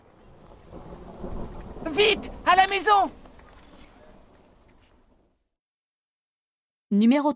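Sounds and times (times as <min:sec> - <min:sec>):
faint windy hiss: 0:00.0 - 0:05.4
rolling thunder of an approaching storm: 0:00.0 - 0:05.4
speech: 0:01.9 - 0:03.2, 0:06.9 - 0:07.3.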